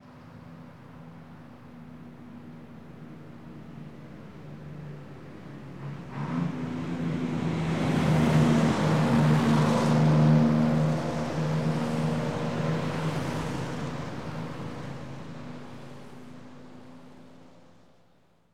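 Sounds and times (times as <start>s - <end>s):
car traffic in traffic jams: 5.7s - 17.5s.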